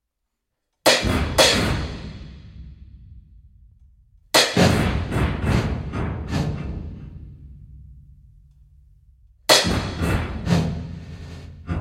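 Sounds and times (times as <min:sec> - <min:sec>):
wired snare drum crash: 0:00.9 - 0:02.7, 0:04.4 - 0:07.1, 0:09.5 - 0:11.7.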